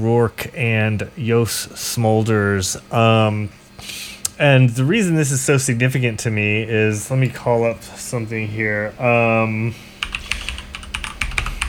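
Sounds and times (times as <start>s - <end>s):
speech: 0.0s - 9.9s
typing on a computer keyboard: 10.0s - 11.6s.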